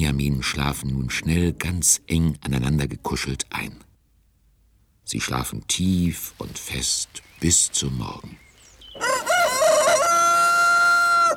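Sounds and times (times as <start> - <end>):
speech: 0.0 - 3.9, 5.1 - 8.4
rooster crowing: 8.9 - 11.3.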